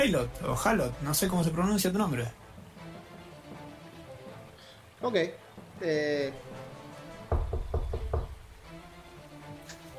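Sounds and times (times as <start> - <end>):
speech: 0.0 - 2.4, 5.0 - 6.7
firm knocking on a door: 7.2 - 8.5.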